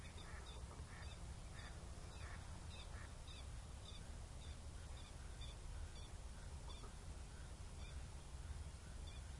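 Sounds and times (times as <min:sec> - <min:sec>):
birds calling with short sharp chirps at night: 0:00.0 - 0:09.3
steady low rumble: 0:00.0 - 0:09.3.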